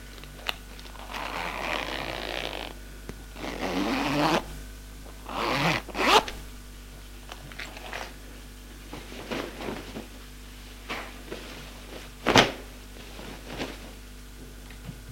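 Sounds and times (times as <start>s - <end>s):
zipper pulls as a woman undresses a man: 0.8s - 2.8s, 3.4s - 4.5s, 5.2s - 6.4s, 7.6s - 8.2s
soft rustling of fabric as a woman undresses a man: 0.8s - 6.4s, 7.2s - 14.5s.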